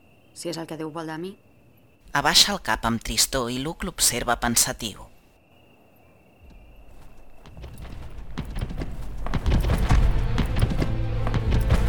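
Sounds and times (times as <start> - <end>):
speech: 0.4 - 1.5, 2.1 - 5.1
hoofbeats of a horse with a rider galloping through a forest at dawn: 6.5 - 11.8.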